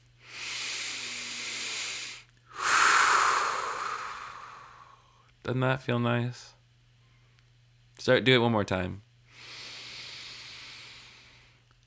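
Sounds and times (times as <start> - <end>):
deep breath: 0.2 - 5.2, 9.3 - 11.6
speech: 5.4 - 6.6, 8.0 - 9.1.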